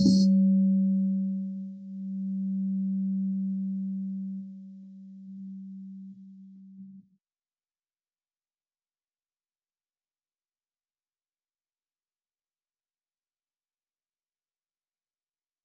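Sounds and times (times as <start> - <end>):
dry and wet bowl sound: 0.2 - 7.0.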